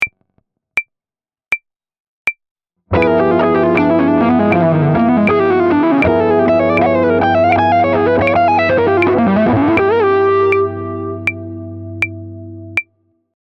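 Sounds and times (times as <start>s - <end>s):
jazz fusion lick on a half-whole diminished scale: 2.9s - 11.6s.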